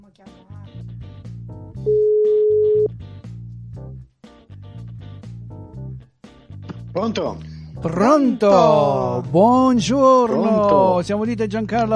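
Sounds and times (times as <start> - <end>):
telephone dial tone while a call is being placed: 1.9 - 2.9
speech: 7.0 - 11.9.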